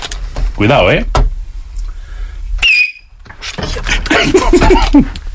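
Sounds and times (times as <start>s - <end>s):
speech: 0.6s - 1.2s, 3.4s - 5.2s
shrill nearly ultrasonic human whistle sliding downward in pitch: 2.6s - 3.1s
laughter: 3.8s - 5.2s.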